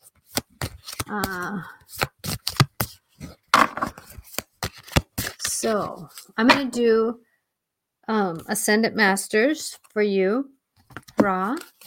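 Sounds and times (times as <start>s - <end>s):
playing cards shuffled for a card reading: 0.0s - 6.4s, 10.8s - 11.8s
speech: 1.1s - 2.0s, 5.6s - 7.3s, 8.1s - 10.6s, 11.2s - 11.7s.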